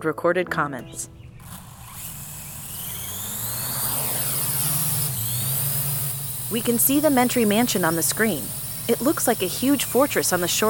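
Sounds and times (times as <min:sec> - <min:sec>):
speech: 0:00.0 - 0:01.6, 0:06.5 - 0:10.6
drone motors buzzing overhead: 0:01.2 - 0:10.6
rushing hiss: 0:03.9 - 0:10.6.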